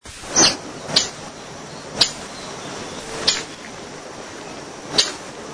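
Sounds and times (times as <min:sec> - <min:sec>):
streaked flycatcher calling: 0:00.3 - 0:05.4.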